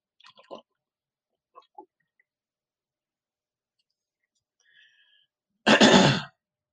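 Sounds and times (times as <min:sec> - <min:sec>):
sipping and swallowing water from a glass: 0:00.2 - 0:02.3
person clearing throat: 0:05.7 - 0:06.4.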